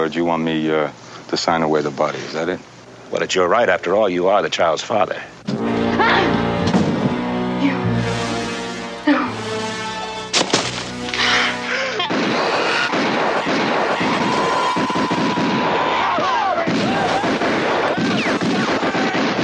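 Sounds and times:
speech: 0.0s - 6.4s
tense music with sharp accented hits: 5.4s - 13.8s
sustained gunfire with rapid rattling shots and booming blasts: 12.0s - 19.4s.

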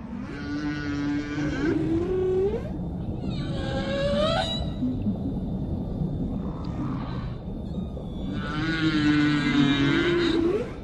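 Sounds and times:
male humpback whale song: 0.1s - 5.0s, 8.2s - 10.8s
low underwater rumble: 1.2s - 9.4s.

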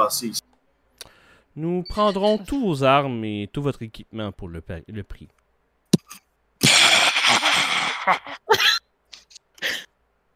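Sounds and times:
speech: 0.1s - 0.4s, 1.6s - 5.4s, 8.0s - 8.6s
woman coughing harshly: 6.6s - 8.9s.

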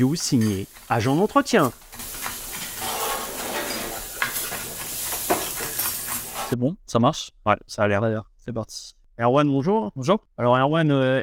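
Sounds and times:
speech: 0.0s - 1.8s, 6.5s - 11.2s
food sizzling and hissing in a pan in a restaurant open kitchen: 0.0s - 6.6s
light clanks of utensils: 0.0s - 6.6s
scraping stirs of food in a pan: 0.0s - 6.6s.

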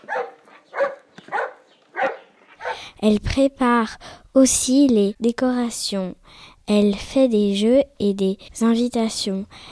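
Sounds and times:
dog barking: 0.0s - 2.9s
speech: 3.0s - 9.7s.

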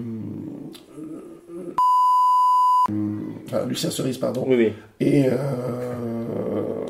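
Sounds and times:
censor bleep over a spoken name: 1.8s - 2.9s
speech: 2.9s - 6.0s.

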